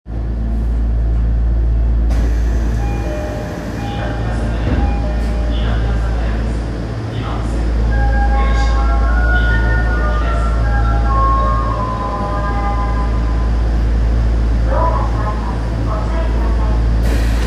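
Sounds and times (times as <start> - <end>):
train sounds at Minami-Asagaya station: 0.1 - 17.4.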